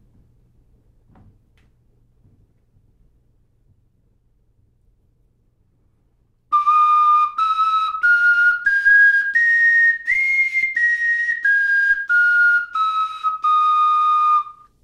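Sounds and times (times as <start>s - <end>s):
reconstructed bone fipple flute with a chipped fragment playing a scale: 6.5s - 14.8s.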